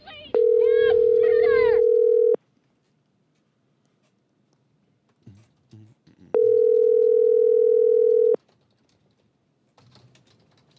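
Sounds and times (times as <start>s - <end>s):
outgoing phone call electronic ring tone: 0.3s - 2.4s, 6.4s - 8.4s.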